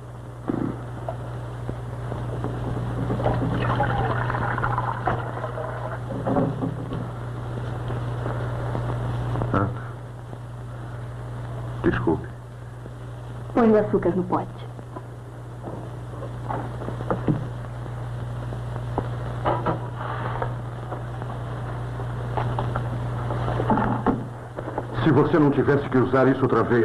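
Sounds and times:
low constant hum: 0:00.0 - 0:26.8
water filling a container: 0:03.5 - 0:06.0
speech: 0:13.6 - 0:14.7, 0:25.2 - 0:26.8.

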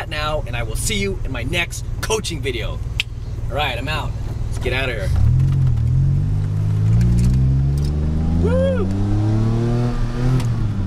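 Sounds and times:
speech: 0:00.2 - 0:05.3, 0:08.4 - 0:09.3
DeLorean sports car engine accelerating: 0:04.6 - 0:10.8
person whooping: 0:08.4 - 0:09.0.

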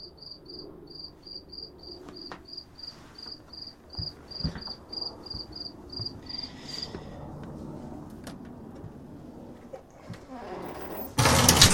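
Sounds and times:
cricket chirping: 0:00.0 - 0:06.8
low rumbling noise: 0:00.0 - 0:11.7.

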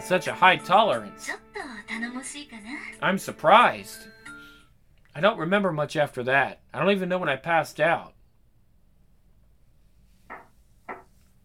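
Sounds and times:
speech: 0:00.1 - 0:01.4, 0:02.0 - 0:04.1, 0:05.2 - 0:08.2
knocking on a door: 0:10.3 - 0:11.1.

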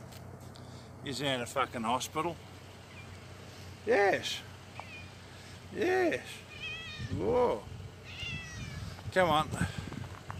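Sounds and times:
steady low mechanical hum: 0:00.0 - 0:10.3
speech: 0:01.0 - 0:02.5, 0:03.8 - 0:04.5, 0:05.7 - 0:07.7, 0:09.2 - 0:09.8
cat meowing: 0:04.8 - 0:05.1, 0:06.5 - 0:07.2, 0:08.0 - 0:08.9.

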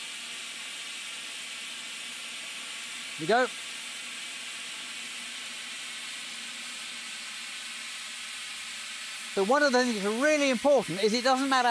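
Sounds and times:
steam boiler safety valve lifting and venting with high-pitched hiss: 0:00.0 - 0:11.6
speech: 0:03.2 - 0:03.6, 0:09.4 - 0:11.6.

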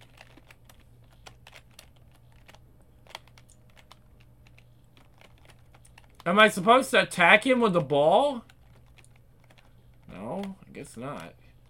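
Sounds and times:
computer keyboard keys pressed while playing a tennis video game: 0:00.0 - 0:06.3, 0:08.4 - 0:10.6
steady low electrical hum: 0:00.0 - 0:11.6
speech: 0:06.2 - 0:08.5, 0:10.8 - 0:11.4.

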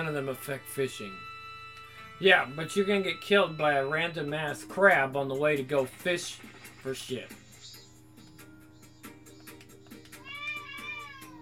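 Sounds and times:
speech: 0:00.0 - 0:01.3, 0:02.2 - 0:07.4
angry cat meowing: 0:10.2 - 0:11.3.

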